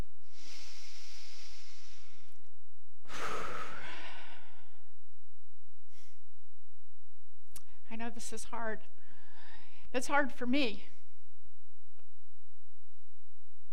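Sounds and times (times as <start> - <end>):
deep breathing: 0.0 - 5.2, 5.8 - 6.4, 8.9 - 9.9
speech: 8.2 - 9.0, 9.9 - 10.9.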